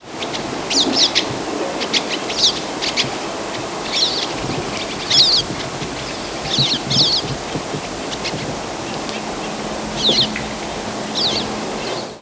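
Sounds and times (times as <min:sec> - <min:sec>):
pine siskin buzzy twittering calls: 0:00.2 - 0:10.5, 0:11.1 - 0:12.2.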